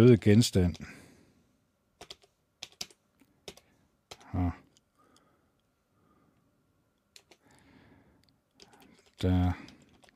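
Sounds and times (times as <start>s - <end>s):
speech: 0.0s - 1.0s, 9.2s - 9.7s
typing on a computer keyboard: 2.0s - 4.4s, 7.1s - 7.4s, 8.5s - 10.1s.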